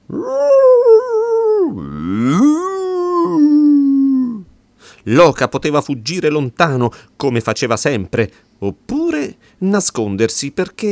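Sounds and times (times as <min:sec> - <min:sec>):
fox howling and growling: 0:00.0 - 0:04.4
speech: 0:05.1 - 0:10.9.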